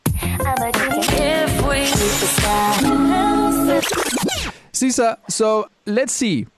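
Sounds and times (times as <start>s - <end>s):
mashup of pop song snippets: 0.0s - 4.8s
speech: 0.4s - 1.2s, 1.8s - 6.5s.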